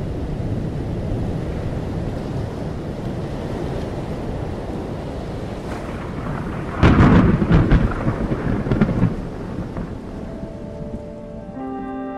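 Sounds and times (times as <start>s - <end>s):
heavy rain pouring in a storm over the sea: 0.0s - 11.9s
thunder crash and rolling rumble in a storm over the sea: 5.6s - 11.5s.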